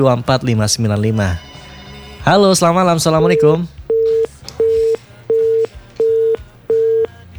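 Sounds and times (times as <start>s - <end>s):
speech: 0.0s - 1.5s, 2.2s - 3.8s
telephone busy tone after a dropped call: 3.2s - 7.3s.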